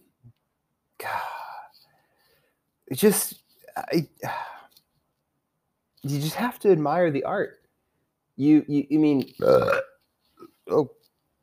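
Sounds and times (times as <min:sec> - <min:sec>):
speech: 0:01.0 - 0:01.3, 0:02.9 - 0:04.5, 0:06.0 - 0:07.6, 0:08.4 - 0:09.8, 0:10.7 - 0:11.0
low guttural burp bringing up a little vomit: 0:09.4 - 0:10.0.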